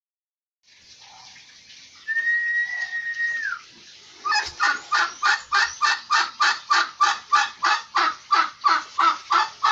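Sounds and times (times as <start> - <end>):
turkey calling: 2.1 - 9.7.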